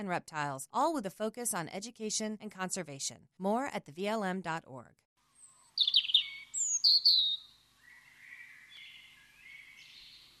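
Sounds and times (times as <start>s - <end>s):
speech: 0.0s - 5.0s
Eastern wood-pewee singing outdoors: 5.4s - 10.3s.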